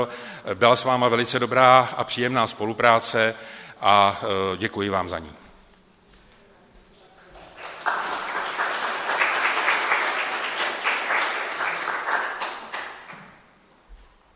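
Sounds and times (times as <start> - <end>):
speech: 0.0 - 5.4
audience applause: 7.3 - 13.4.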